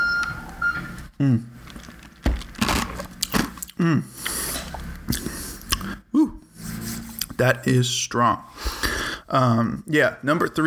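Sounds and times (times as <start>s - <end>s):
slurping: 0.2s - 7.6s
speech: 1.2s - 1.6s, 3.8s - 4.1s, 7.4s - 10.6s
person sipping an icy cocktail: 1.6s - 2.1s, 3.0s - 7.4s.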